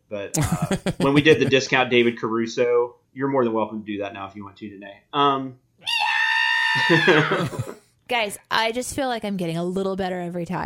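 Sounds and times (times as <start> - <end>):
speech: 0.1 - 6.0, 6.8 - 10.6
laughter: 0.4 - 1.8, 6.8 - 7.8
person imitating a loud scream: 5.8 - 7.8.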